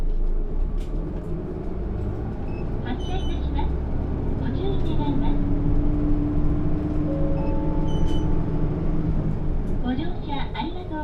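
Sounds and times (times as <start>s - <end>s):
bus engine rumbling setting off from a stop: 0.0s - 11.0s
brief high chimes or beeps on a bus: 7.1s - 8.7s.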